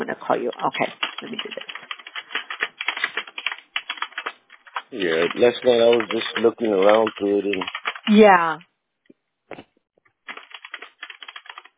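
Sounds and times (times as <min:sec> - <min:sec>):
speech: 0:00.1 - 0:01.4, 0:04.9 - 0:08.7
typing a note on a computer keyboard: 0:00.5 - 0:08.1, 0:10.2 - 0:11.7.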